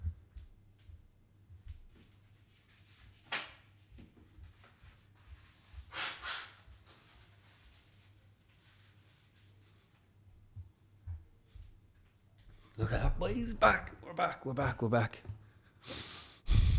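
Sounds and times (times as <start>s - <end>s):
person blowing nose: 5.9s - 6.7s, 15.8s - 16.7s
steady low hum: 12.7s - 14.8s, 16.5s - 16.7s
speech: 12.8s - 16.1s.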